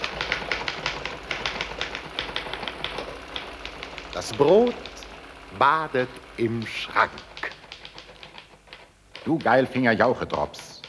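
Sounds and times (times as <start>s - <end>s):
typewriter clattering: 0.0s - 10.8s
speech: 4.2s - 4.9s, 5.6s - 7.3s, 9.2s - 10.7s.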